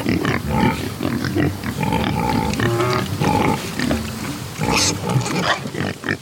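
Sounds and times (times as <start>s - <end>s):
black Iberico pigs grunting while rooting in dirt on a farm: 0.0s - 6.1s
busy rustling farmyard background: 0.0s - 6.1s.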